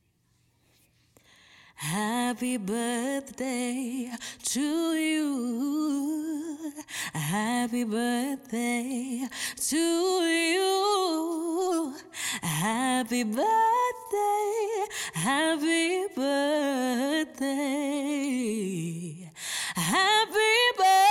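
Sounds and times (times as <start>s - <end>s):
woman singing a birthday song: 1.8s - 21.1s.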